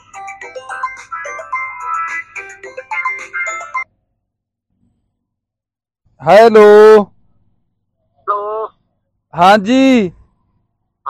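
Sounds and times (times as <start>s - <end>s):
mobile phone ringing with a bright electronic melody: 0.0s - 3.9s
speech: 6.2s - 7.1s, 9.4s - 10.2s.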